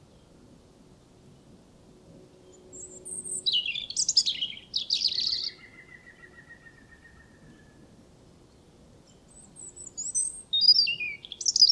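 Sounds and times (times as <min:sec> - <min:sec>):
European robin Erithacus rubecula singing: 0:02.4 - 0:07.8, 0:08.5 - 0:11.7.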